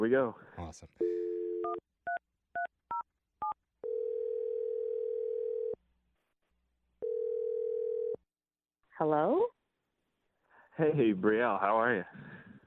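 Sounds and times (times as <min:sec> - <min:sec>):
speech: 0:00.0 - 0:01.8, 0:09.0 - 0:09.6, 0:10.8 - 0:12.3
phone ringback tone: 0:01.0 - 0:01.8, 0:03.8 - 0:05.8, 0:07.0 - 0:08.2.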